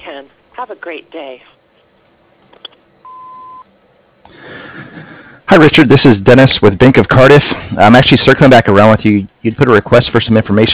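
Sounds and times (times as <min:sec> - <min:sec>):
speech: 0:00.2 - 0:01.6, 0:05.5 - 0:10.7
answering machine beep: 0:03.0 - 0:03.7.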